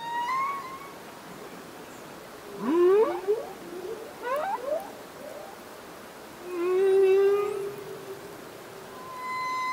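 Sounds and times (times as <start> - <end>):
male humpback whale song: 0.0 - 1.0, 2.5 - 5.6, 6.4 - 9.7.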